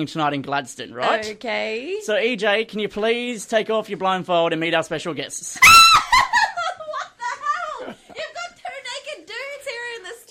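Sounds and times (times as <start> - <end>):
speech: 0.0 - 6.2
person screaming and squealing in excitement: 5.6 - 6.2
laughter: 5.6 - 8.8.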